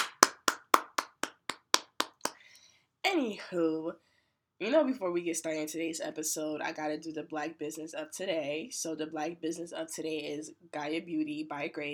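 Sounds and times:
hand clapping: 0:00.0 - 0:02.4
speech: 0:03.1 - 0:11.9.

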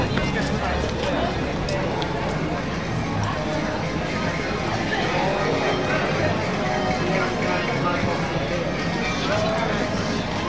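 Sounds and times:
footsteps: 0:00.0 - 0:02.6
babble of overlapping voices of a Christmas market crowd: 0:00.0 - 0:10.4.

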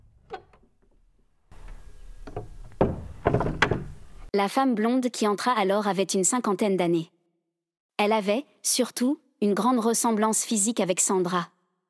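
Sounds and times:
heavy wooden church door creaking open on groaning hinges: 0:00.0 - 0:04.3
speech: 0:04.4 - 0:07.2, 0:08.0 - 0:11.6.

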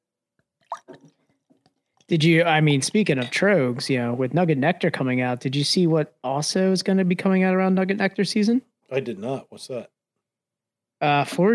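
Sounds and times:
beer pouring into a glass: 0:00.7 - 0:01.2
speech: 0:02.1 - 0:09.9, 0:11.0 - 0:11.5.

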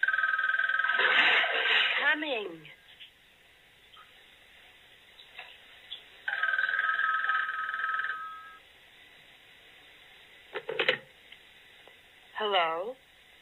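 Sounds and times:
telephone ringing: 0:00.0 - 0:01.1, 0:06.3 - 0:08.6
speech: 0:01.0 - 0:02.8, 0:12.5 - 0:13.0.

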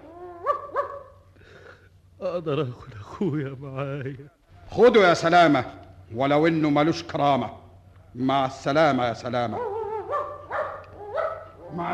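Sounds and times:
dog whining: 0:00.0 - 0:01.1, 0:09.5 - 0:11.9
dog barking sharply: 0:00.4 - 0:01.2, 0:09.5 - 0:11.8
speech: 0:02.2 - 0:07.6, 0:08.2 - 0:09.7.

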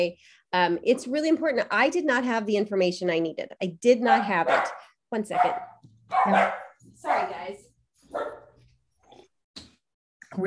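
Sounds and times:
speech: 0:00.0 - 0:08.4
dogs barking: 0:04.0 - 0:07.4, 0:08.1 - 0:08.6.

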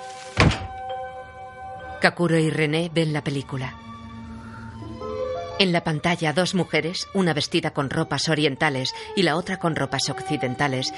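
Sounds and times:
door closing with a dull solid thunk: 0:00.4 - 0:00.8
speech: 0:02.0 - 0:03.8, 0:05.6 - 0:10.9.

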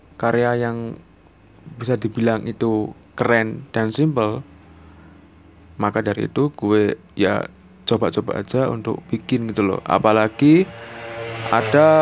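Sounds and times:
speech: 0:00.2 - 0:01.1, 0:01.7 - 0:04.5, 0:05.8 - 0:11.9
motorcycle engine droning past: 0:07.8 - 0:11.9.

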